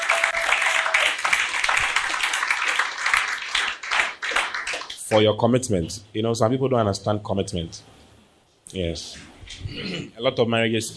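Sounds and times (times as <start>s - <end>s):
large church audience applause: 0.0s - 5.0s
speech: 5.1s - 8.0s, 8.7s - 10.9s.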